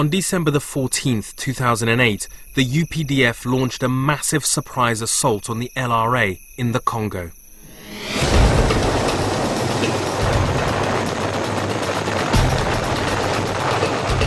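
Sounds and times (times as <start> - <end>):
speech: 0.0 - 8.2, 9.8 - 10.4
helicopter gunship rotors thumping: 8.2 - 14.2.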